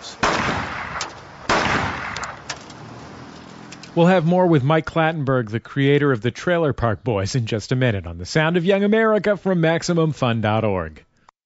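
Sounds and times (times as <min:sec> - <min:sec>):
loaded handgun firing: 0:00.2 - 0:02.7
speech: 0:04.0 - 0:11.1.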